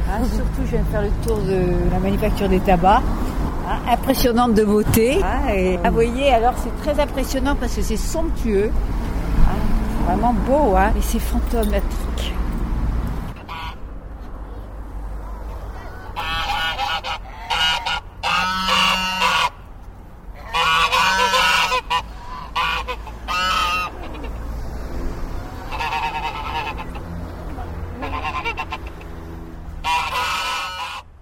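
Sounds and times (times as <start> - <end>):
speech: 0.1 - 12.3
geese honking and cackling in Morlaix: 13.3 - 13.9, 16.1 - 19.7, 20.3 - 24.5, 25.5 - 31.1.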